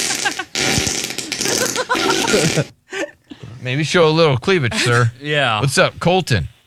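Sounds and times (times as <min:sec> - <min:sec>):
fart sound effect: 0:00.0 - 0:02.8
laughter: 0:00.0 - 0:06.4
speech: 0:02.3 - 0:02.8, 0:03.6 - 0:06.5.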